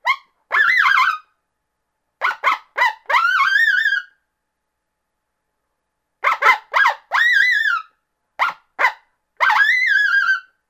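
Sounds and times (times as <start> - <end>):
coyote yipping and calling: 0.0 - 1.2, 2.2 - 4.1, 6.2 - 10.5.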